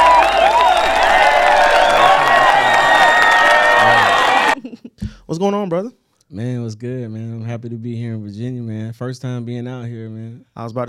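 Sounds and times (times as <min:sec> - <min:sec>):
applause: 0:00.0 - 0:04.6
large audience cheering and whooping: 0:00.0 - 0:04.6
scattered shouts: 0:00.0 - 0:04.6
speech: 0:05.3 - 0:10.8.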